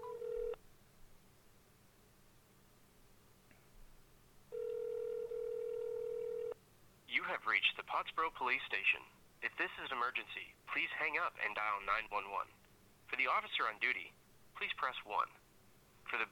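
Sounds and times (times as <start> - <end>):
telephone line ringback tone: 0.0 - 0.6, 4.5 - 6.6
person speaking on phone: 7.1 - 15.4, 16.1 - 16.2
speech: 7.2 - 15.4.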